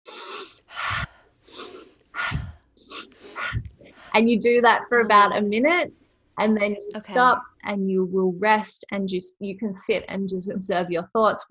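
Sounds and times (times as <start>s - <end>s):
yogic pranayama breathing, forceful breaths through the nose: 0.3s - 7.5s
speech: 4.2s - 11.4s.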